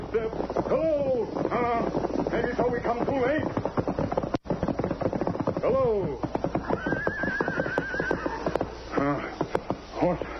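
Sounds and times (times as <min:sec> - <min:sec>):
hooves clip-clopping: 0:00.0 - 0:10.3
speech: 0:00.1 - 0:03.8, 0:05.6 - 0:06.4
horse neighing: 0:06.5 - 0:10.2.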